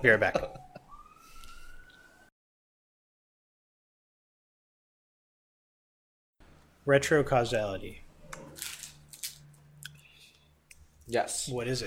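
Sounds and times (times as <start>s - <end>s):
speech: 0.0s - 0.6s, 6.9s - 8.0s, 11.1s - 11.8s
siren wailing outside window: 0.2s - 2.3s, 8.1s - 10.6s.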